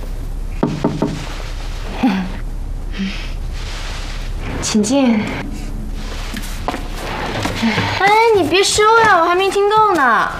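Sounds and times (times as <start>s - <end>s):
quick firm knocks on a door: 0.6s - 1.2s
faint rustle: 1.2s - 9.0s
speech: 4.7s - 5.6s, 7.6s - 10.3s.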